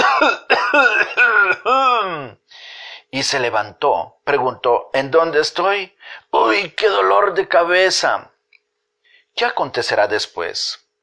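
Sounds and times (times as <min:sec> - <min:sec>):
person acting out a boy's coughing fit: 0:00.0 - 0:02.4
speech: 0:00.2 - 0:02.4, 0:03.1 - 0:08.3, 0:09.4 - 0:10.8.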